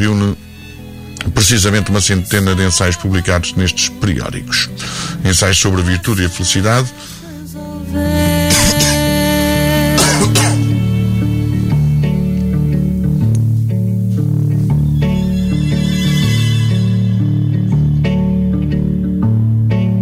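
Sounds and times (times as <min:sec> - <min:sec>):
speech: 0:00.0 - 0:00.4, 0:01.4 - 0:07.2
music: 0:00.0 - 0:19.9
person coughing: 0:08.5 - 0:09.1, 0:09.9 - 0:10.8.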